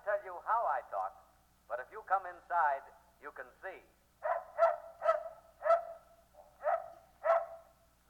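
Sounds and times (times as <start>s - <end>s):
speech: 0.3s - 4.0s
dog barking in a radio advertisement: 4.2s - 7.7s.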